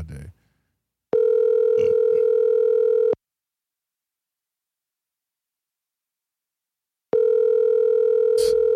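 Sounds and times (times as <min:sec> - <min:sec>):
phone ringback tone while a call waits to connect: 0:01.1 - 0:03.2, 0:07.1 - 0:08.7.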